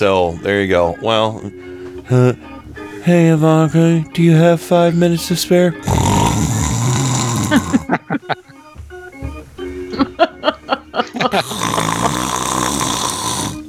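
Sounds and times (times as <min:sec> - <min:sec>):
speech: 0:00.0 - 0:06.5
laughter: 0:00.8 - 0:02.6, 0:07.3 - 0:08.8, 0:09.8 - 0:12.7
snoring: 0:05.7 - 0:08.0, 0:11.3 - 0:13.6.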